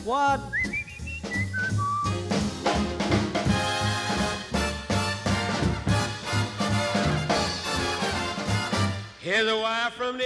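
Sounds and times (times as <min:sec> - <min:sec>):
speech: 0:00.0 - 0:00.8, 0:09.3 - 0:10.2
full band playing with strong rhythmic beat: 0:00.0 - 0:09.3
man whistling birdlike notes: 0:00.4 - 0:02.2.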